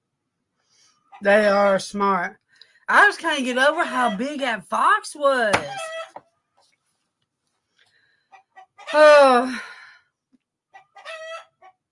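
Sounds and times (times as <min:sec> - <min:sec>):
speech: 0:01.2 - 0:05.9, 0:08.9 - 0:09.7
upset chickens clucking and squawking: 0:05.6 - 0:06.2, 0:08.3 - 0:09.0, 0:10.7 - 0:11.8
rooster crowing: 0:11.0 - 0:11.6.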